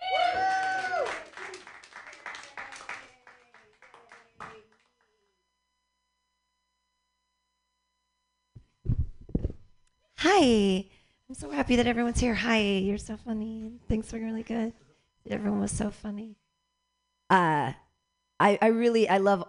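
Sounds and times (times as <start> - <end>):
audience whoops: 0.0 - 3.0
audience applause for comedian: 0.0 - 4.9
speech: 10.2 - 16.4, 17.3 - 17.8, 18.4 - 19.4.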